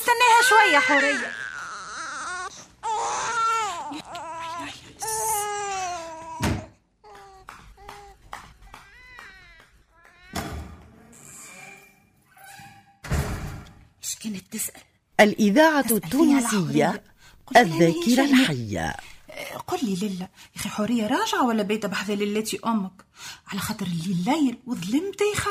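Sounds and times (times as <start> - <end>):
baby girl crying: 0.0 - 13.0
speech: 0.2 - 1.4, 15.2 - 19.1, 19.7 - 25.4.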